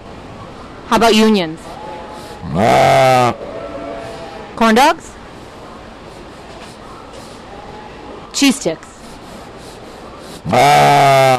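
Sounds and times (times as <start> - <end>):
faint murmur: 0.0 - 11.3
speech: 0.9 - 1.8, 2.4 - 3.5, 4.6 - 5.2, 8.4 - 8.9, 10.4 - 11.3
ewe sheep bleating: 1.6 - 4.6, 10.4 - 11.3.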